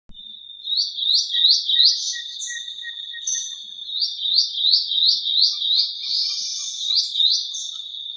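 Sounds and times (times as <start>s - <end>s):
Hylophilus poicilotis at Reserva Surucua: 0.1s - 8.1s.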